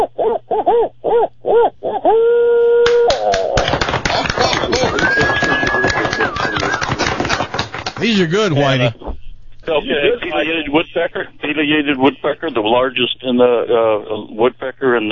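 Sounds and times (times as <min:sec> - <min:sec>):
barred owl hooting: 0:00.0 - 0:03.6
laughter: 0:03.3 - 0:09.0, 0:09.7 - 0:13.0
speech: 0:08.2 - 0:09.0, 0:09.9 - 0:15.0.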